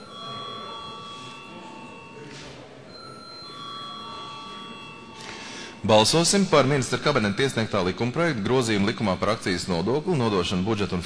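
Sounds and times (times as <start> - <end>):
electric bell ringing in a parliament chamber to call a vote: 0.0 - 7.4
murmuring room of parliament deputies: 0.0 - 11.0
speech: 5.8 - 11.0.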